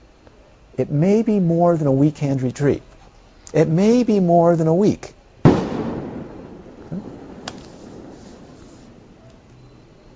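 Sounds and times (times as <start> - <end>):
speech: 0.8 - 2.9, 3.5 - 5.2
explosions outside: 5.4 - 9.5.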